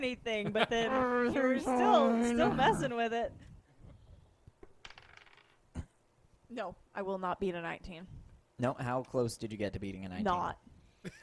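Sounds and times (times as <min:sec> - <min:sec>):
speech: 0:00.0 - 0:03.5, 0:06.5 - 0:11.2
dice tumbling and rattling across a table: 0:04.7 - 0:05.6.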